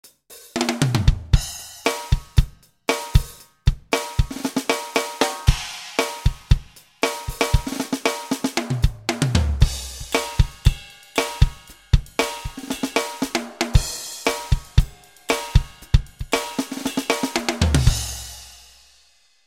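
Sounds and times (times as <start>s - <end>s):
tight rock drum kit on a sound module: 0.0s - 19.0s.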